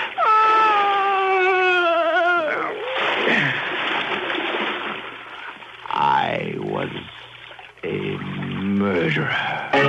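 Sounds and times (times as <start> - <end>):
water splashing and churning: 0.0 - 9.7
woman moaning: 0.2 - 3.5.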